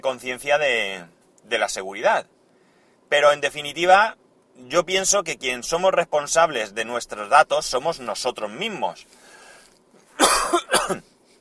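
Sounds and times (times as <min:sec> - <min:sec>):
speech: 0:00.0 - 0:02.4, 0:03.1 - 0:09.2, 0:10.5 - 0:11.1
harsh coughs: 0:10.2 - 0:11.1.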